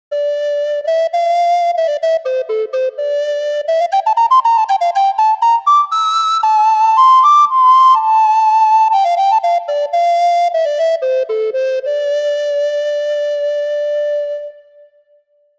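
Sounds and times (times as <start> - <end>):
flutophone playing: 0.1 - 15.0.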